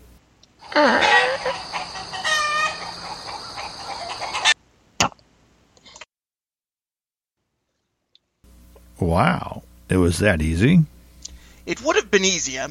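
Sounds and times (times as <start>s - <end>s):
chickens clucking and squawking: 0.6s - 4.6s
speech: 9.0s - 10.9s, 11.7s - 12.6s.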